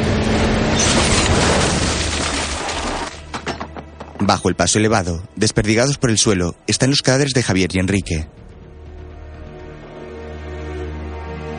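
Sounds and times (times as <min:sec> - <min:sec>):
falling debris clinking and clattering: 0:00.6 - 0:04.2
car crashing into a concrete pillar: 0:00.7 - 0:03.8
speech: 0:04.2 - 0:08.4.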